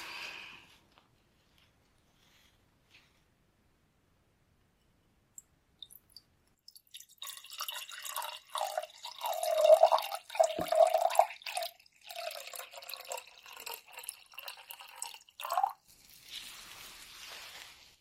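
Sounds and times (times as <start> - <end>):
water pouring into a glass for a swallowing test: 5.8 - 16.2.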